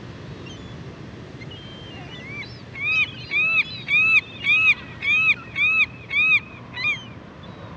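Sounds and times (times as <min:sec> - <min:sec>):
California gull giving nasal arched yelps: 0:02.8 - 0:07.1.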